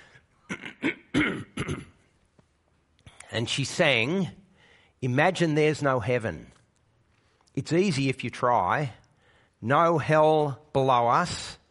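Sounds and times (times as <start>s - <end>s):
man clearing his throat: 0.4s - 2.1s
speech: 3.4s - 4.4s, 5.0s - 6.6s, 7.6s - 9.0s, 9.6s - 11.6s.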